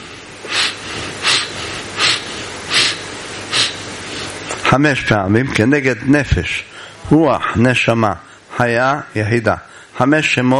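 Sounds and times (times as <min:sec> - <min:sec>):
person sniffing spices: 0:00.0 - 0:04.4
speech: 0:04.7 - 0:10.5.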